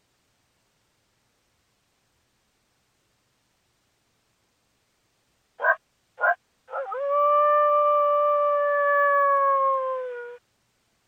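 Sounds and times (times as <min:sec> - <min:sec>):
coyote barking during mating call: 0:05.6 - 0:06.4
coyote howling during mating call: 0:05.6 - 0:10.4.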